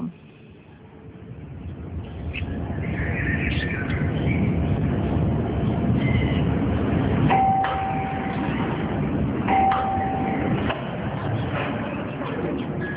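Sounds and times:
loud rumbling background: 0.8s - 12.9s
electronic doorbell ringing at a home's front door: 7.3s - 8.4s, 9.5s - 10.6s.

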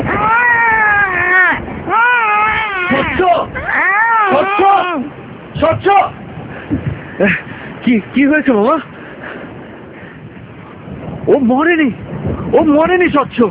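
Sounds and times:
person crying and wailing from inside a grave: 0.0s - 5.2s
speech: 7.2s - 8.9s, 11.3s - 13.4s.

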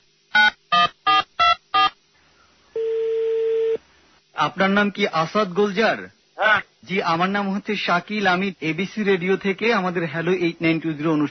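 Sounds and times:
steady continuous telephone line tone: 0.4s - 2.0s, 2.8s - 3.8s
speech: 4.4s - 11.2s.

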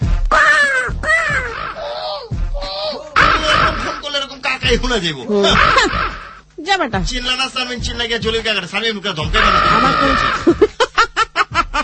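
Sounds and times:
human voice imitating a crow cawing: 0.3s - 4.0s, 5.4s - 6.4s, 9.4s - 10.6s
speech: 4.7s - 6.0s, 6.7s - 10.7s
laughter: 5.4s - 6.2s, 9.8s - 11.8s.

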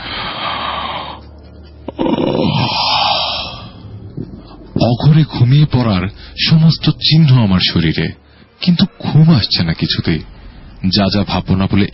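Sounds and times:
tired person yawning while lying down: 1.9s - 3.8s
speech: 4.9s - 11.9s.

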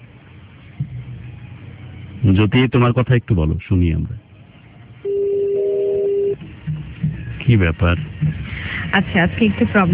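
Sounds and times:
speech: 2.2s - 4.3s, 7.5s - 9.9s
electronic telephone tone while placing a call: 5.0s - 6.4s.

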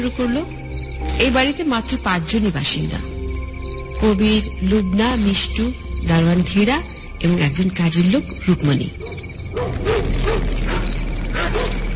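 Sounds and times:
speech: 0.0s - 3.1s, 4.0s - 9.0s
dogs barking in the distance late at night: 8.8s - 11.9s.

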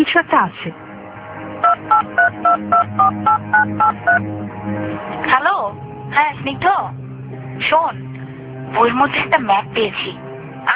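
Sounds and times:
speech: 0.0s - 0.9s, 1.7s - 7.0s, 7.6s - 8.1s, 8.7s - 10.7s
touch-tone phone dialing beeps as a call is placed: 1.6s - 4.2s.

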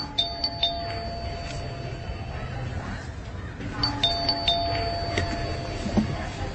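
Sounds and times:
doorbell chimes ringing in a home: 0.0s - 2.7s, 3.8s - 6.3s.

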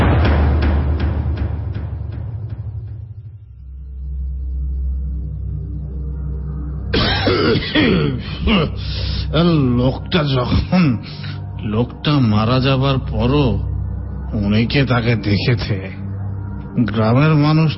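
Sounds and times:
low rumbling: 0.0s - 17.7s
man coughing heavily and clearing his throat: 6.9s - 9.2s
speech: 8.4s - 13.7s, 14.3s - 16.0s, 16.8s - 17.7s.

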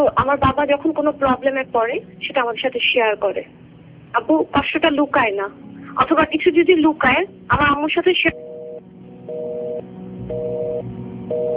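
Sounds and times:
speech: 0.2s - 8.5s
telephone busy tone after a disconnected call: 8.4s - 11.5s.

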